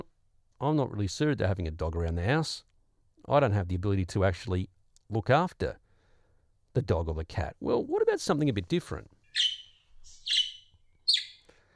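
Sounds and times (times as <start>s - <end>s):
speech: 0.6s - 5.8s, 6.8s - 9.6s
pet budgie chirping: 9.2s - 11.5s.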